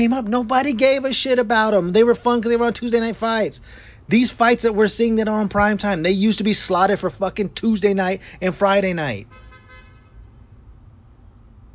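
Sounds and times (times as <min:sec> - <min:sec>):
speech: 0:00.0 - 0:09.4
car horn toot: 0:09.2 - 0:10.3.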